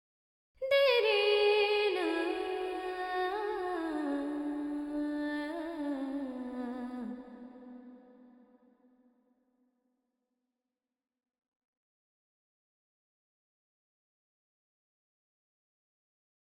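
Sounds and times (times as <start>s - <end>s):
female vocals: 0.6s - 8.2s.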